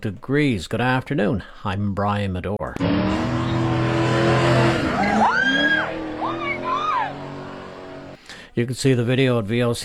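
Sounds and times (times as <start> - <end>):
speech: 0.0 - 3.5, 4.2 - 5.4, 8.6 - 9.8
Corvette engine roaring while doing donuts: 2.8 - 8.2
Corvette tires squealing while spinning donuts on a road at night: 2.8 - 8.2.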